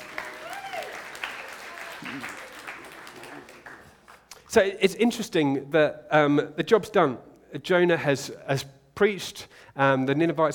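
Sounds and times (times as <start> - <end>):
faint voices and cheers: 0.0 - 3.5
audience applauding the actors: 0.0 - 4.3
speech: 2.0 - 2.4, 4.5 - 10.5.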